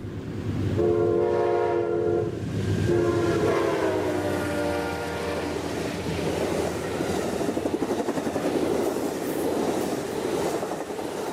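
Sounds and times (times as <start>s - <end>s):
passenger train rumbling pulling out of station: 0.0s - 11.3s
passenger train horn blasts: 0.8s - 5.7s
rhythmic passenger train wheel clatter: 5.5s - 11.3s.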